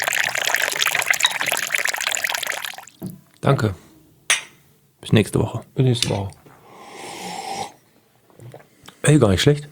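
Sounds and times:
Balinese filter coffee pouring into a cup: 0.0s - 3.1s
speech: 3.4s - 3.8s, 5.1s - 6.4s, 9.1s - 9.7s.

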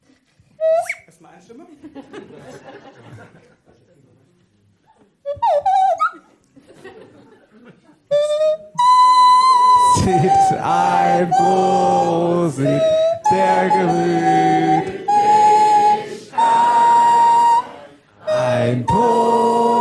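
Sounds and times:
flute playing a drinking-song tune: 0.6s - 1.0s, 5.2s - 6.3s, 8.1s - 19.8s
speech: 1.4s - 2.8s
people laughing: 1.5s - 4.2s, 6.2s - 8.1s.

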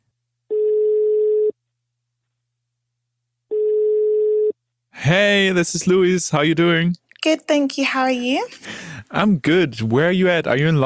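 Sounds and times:
telephone ringback tone on an outgoing call: 0.5s - 1.5s, 3.5s - 4.6s
speech: 5.1s - 10.8s.

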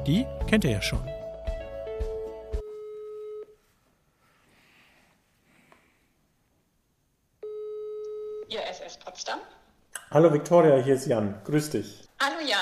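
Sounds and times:
speech: 0.0s - 1.1s, 10.1s - 12.6s
telephone ringing tone during an outgoing call: 2.6s - 3.6s, 7.4s - 8.5s.

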